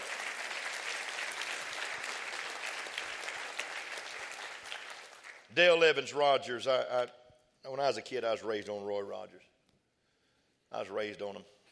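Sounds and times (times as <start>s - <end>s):
large crowd applauding: 0.0s - 5.5s
speech: 5.6s - 9.6s, 10.7s - 11.6s.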